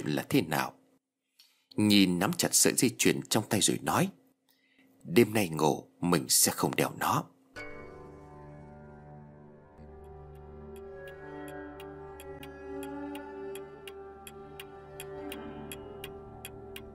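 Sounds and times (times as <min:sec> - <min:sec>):
speech: 0:00.0 - 0:00.8, 0:01.8 - 0:04.2, 0:05.0 - 0:07.3
low sustained musical drone: 0:07.6 - 0:16.9
clock ticking in a bedroom: 0:09.8 - 0:16.9.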